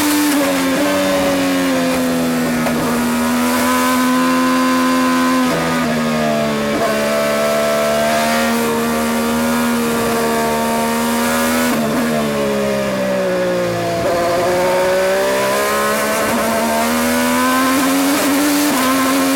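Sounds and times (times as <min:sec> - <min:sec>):
Dallara-Honda IndyCar engine climbing through gears: 0:00.0 - 0:19.3
race car road noise: 0:00.0 - 0:19.3.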